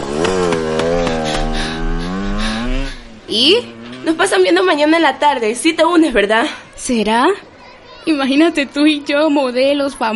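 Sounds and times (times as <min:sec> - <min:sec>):
motorcycle engine droning: 0:00.0 - 0:05.2
speech: 0:03.3 - 0:10.1.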